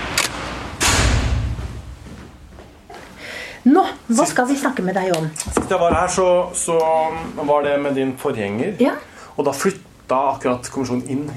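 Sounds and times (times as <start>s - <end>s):
door opening with a click and heavy thud: 0.1s - 1.8s, 5.5s - 6.3s
speech: 3.6s - 11.3s.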